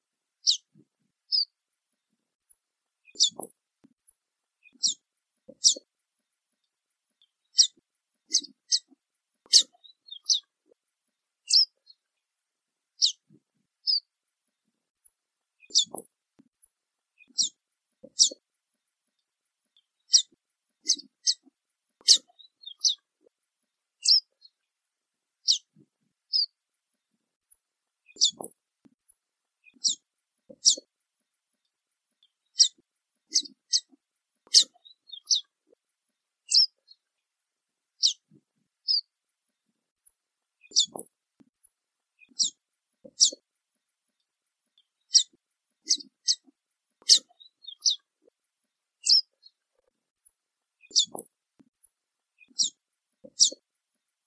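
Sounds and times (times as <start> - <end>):
diamond firetail singing: 0.4 - 0.7, 3.1 - 3.6, 4.6 - 5.0, 5.6 - 5.8, 7.5 - 10.5, 15.6 - 16.1, 17.2 - 17.6, 18.2 - 18.4, 19.8 - 23.0, 24.0 - 24.5, 25.4 - 25.7, 28.1 - 28.6, 30.6 - 30.9, 32.5 - 35.5, 38.0 - 38.2, 40.6 - 41.1, 43.2 - 43.4, 45.1 - 48.1, 50.8 - 51.3, 52.4 - 53.6.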